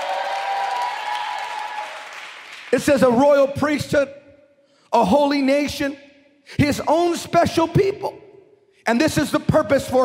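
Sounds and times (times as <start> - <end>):
audience clapping: 0.0 - 3.2
speech: 2.7 - 4.2, 4.9 - 8.2, 8.8 - 10.0.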